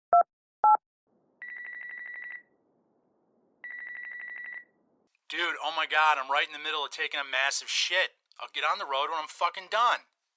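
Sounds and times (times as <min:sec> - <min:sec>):
trilling electronic phone rings: 0:03.6 - 0:04.7
speech: 0:05.4 - 0:10.1.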